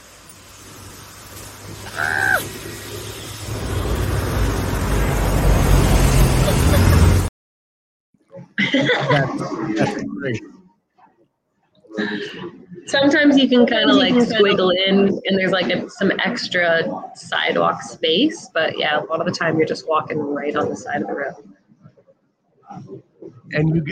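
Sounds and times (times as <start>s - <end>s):
trucks rumbling past on a roadside: 1.0s - 7.3s
person talking and laughing: 6.4s - 7.2s, 8.5s - 10.4s
speech: 8.8s - 10.6s, 12.0s - 21.6s, 22.7s - 23.9s.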